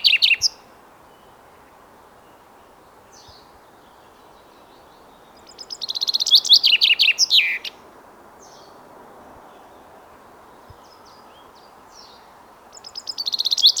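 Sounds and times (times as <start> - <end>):
Common chaffinch Fringilla coelebs singing: 0.0 - 0.6, 4.7 - 7.8, 12.0 - 13.7.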